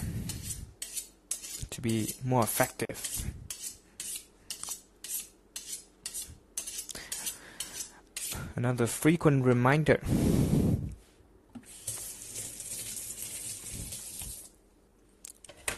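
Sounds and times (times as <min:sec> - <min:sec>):
knife being sharpened: 0:00.3 - 0:02.2, 0:03.0 - 0:08.4
speech: 0:01.8 - 0:03.4, 0:08.6 - 0:10.6
tap water running: 0:11.6 - 0:14.5.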